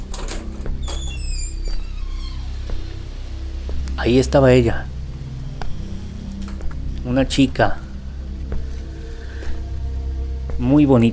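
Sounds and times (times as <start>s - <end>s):
bedroom door creaking open with high squeaky groans: 0.0s - 3.0s, 6.4s - 6.7s
speech: 4.0s - 4.9s, 7.1s - 7.8s, 10.6s - 11.1s.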